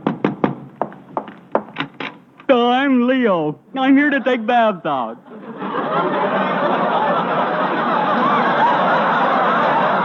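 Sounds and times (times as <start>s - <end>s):
knocking on a door: 0.0s - 1.8s
speech: 2.5s - 6.4s
laughter: 5.1s - 10.0s.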